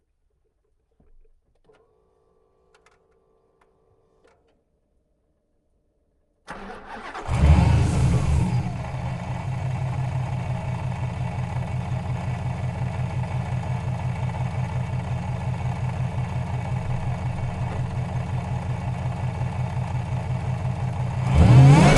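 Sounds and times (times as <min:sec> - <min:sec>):
2011 Dodge SRT8 engine starting, recorded onboard: 0:06.5 - 0:21.9
2011 Dodge SRT8 driving fast, recorded onboard: 0:07.1 - 0:11.2, 0:20.2 - 0:21.9.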